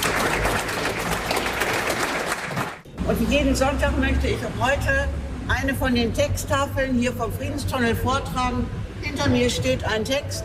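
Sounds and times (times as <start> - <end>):
audience applause after a concert: 0.0 - 2.8
speech: 3.1 - 10.4.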